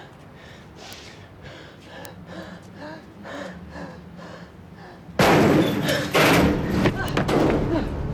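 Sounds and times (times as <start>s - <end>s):
man panting after running up a ramp: 0.0s - 5.2s
thuds: 5.2s - 8.1s.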